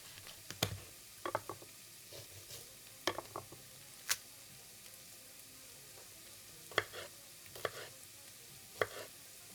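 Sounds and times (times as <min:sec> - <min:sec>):
vegetables sizzling in a hot oiled pan: 0:00.0 - 0:09.5.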